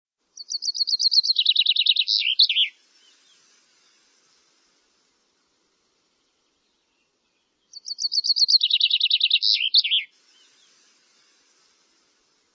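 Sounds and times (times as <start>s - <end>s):
bird giving a high trilled phrase of rapid notes: 0.4s - 2.7s, 7.7s - 10.1s.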